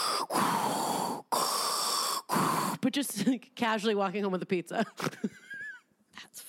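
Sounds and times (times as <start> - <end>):
person imitating heavy rasping breathing through a face mask: 0.0 - 2.8
speech: 2.9 - 5.4.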